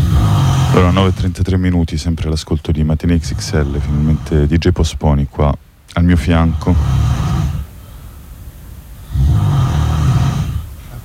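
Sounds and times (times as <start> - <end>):
heavy snoring: 0.0 - 1.4, 3.2 - 4.6, 6.2 - 7.8, 9.0 - 10.8
speech: 0.8 - 7.2.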